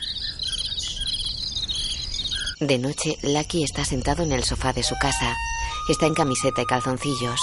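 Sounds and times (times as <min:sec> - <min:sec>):
crickets chirping in a plastic box: 0:00.9 - 0:07.4
speech: 0:02.6 - 0:07.4
low rumble: 0:03.1 - 0:07.4.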